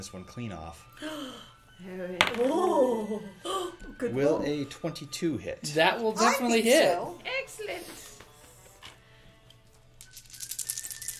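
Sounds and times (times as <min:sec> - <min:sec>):
speech: 0:00.0 - 0:08.1
handful of dice clattering across a table during a tabletop game: 0:10.0 - 0:11.1.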